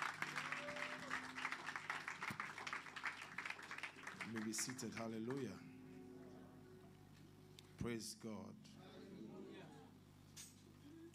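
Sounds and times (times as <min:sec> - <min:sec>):
church audience applauding during a worship service: 0:00.0 - 0:05.6
speech: 0:04.3 - 0:05.7, 0:07.8 - 0:08.9.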